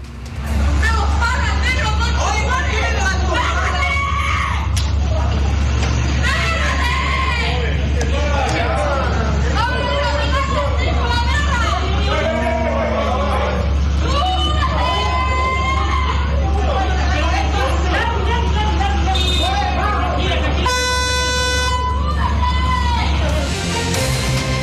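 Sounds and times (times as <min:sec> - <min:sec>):
low rumble of idling traffic: 0:00.0 - 0:24.6
several people shouting and yelling in a street fight at night in La Cisterna: 0:00.5 - 0:24.6
car horns honking: 0:19.0 - 0:22.1.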